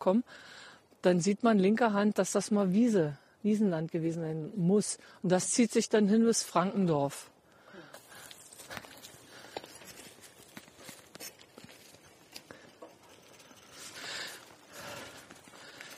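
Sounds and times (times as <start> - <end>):
speech: 0.0 - 7.3
rustling outdoor background: 0.0 - 15.9
horse hooves clip-clopping at a walking pace on the Grafendamm: 8.0 - 15.9.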